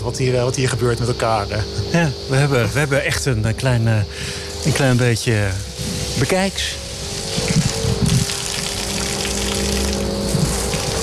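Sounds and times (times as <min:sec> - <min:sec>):
faint constant mechanical hum: 0:00.0 - 0:11.0
speech: 0:00.1 - 0:06.8
cow urinating heavily in a barn: 0:04.4 - 0:11.0.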